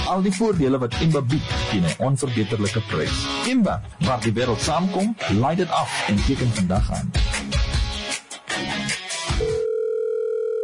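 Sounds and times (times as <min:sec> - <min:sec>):
speech: 0:00.1 - 0:07.6
telephone ringback tone: 0:09.4 - 0:10.6.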